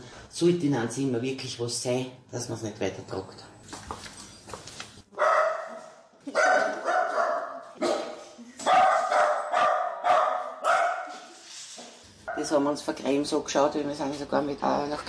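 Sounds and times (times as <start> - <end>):
speech: 0.4 - 4.1, 12.5 - 15.0
dogs barking in animal shelter kennels: 5.1 - 11.3.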